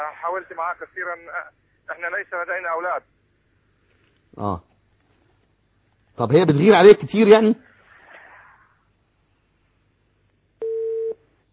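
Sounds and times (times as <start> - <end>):
speech: 0.1 - 3.2, 4.3 - 4.7, 6.2 - 7.6
telephone line tone after a call is cut off: 10.6 - 11.2.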